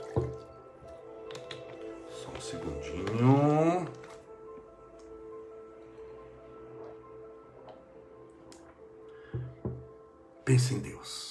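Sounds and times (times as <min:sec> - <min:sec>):
water pouring into a glass: 0:00.0 - 0:04.2
speech: 0:10.5 - 0:11.2.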